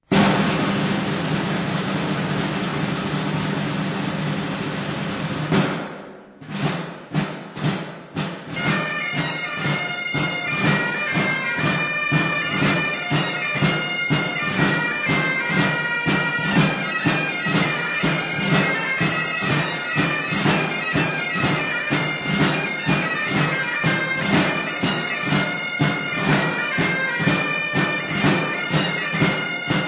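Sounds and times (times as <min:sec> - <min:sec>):
drums: 0:00.0 - 0:29.8
bagpipes: 0:08.5 - 0:29.8.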